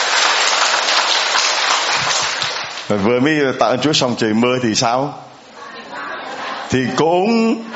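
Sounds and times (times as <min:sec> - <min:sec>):
congregation applauding in thanks during a church service: 0:00.0 - 0:03.4
speech: 0:02.9 - 0:05.3, 0:06.7 - 0:07.7.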